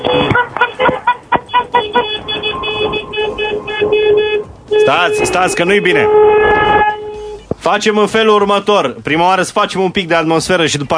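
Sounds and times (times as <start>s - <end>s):
several car horns honking: 0.0s - 7.7s
speech: 4.9s - 6.6s, 7.6s - 10.9s.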